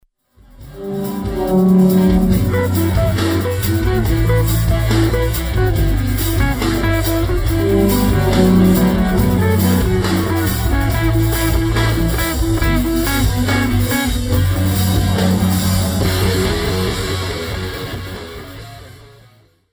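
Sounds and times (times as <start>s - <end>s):
bass harmonics: 0.6s - 19.1s.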